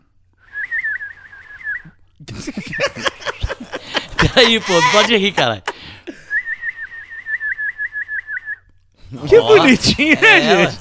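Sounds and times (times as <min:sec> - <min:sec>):
person whistling a warbling tune in imitation of birdsong: 0:00.4 - 0:02.0, 0:06.3 - 0:08.7
laughter: 0:02.3 - 0:06.2, 0:09.1 - 0:10.8
speech: 0:04.4 - 0:05.7, 0:09.2 - 0:10.8.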